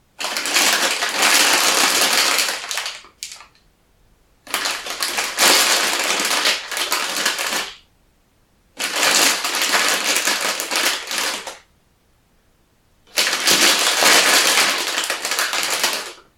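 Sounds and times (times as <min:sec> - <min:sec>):
plastic bag crumpling: 0:00.2 - 0:03.6, 0:04.5 - 0:07.8, 0:08.8 - 0:11.6, 0:13.1 - 0:16.3.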